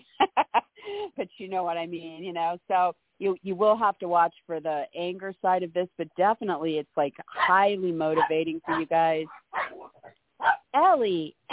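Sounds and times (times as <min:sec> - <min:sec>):
speech: 0:01.2 - 0:09.9, 0:10.8 - 0:11.5
dog barking: 0:08.2 - 0:10.7.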